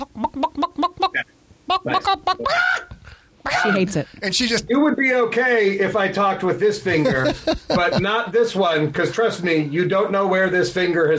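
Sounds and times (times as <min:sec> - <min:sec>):
person imitating a talking chicken clucking: 0:00.0 - 0:04.0
speech: 0:01.8 - 0:02.8, 0:03.5 - 0:11.1
laughter: 0:06.9 - 0:08.2.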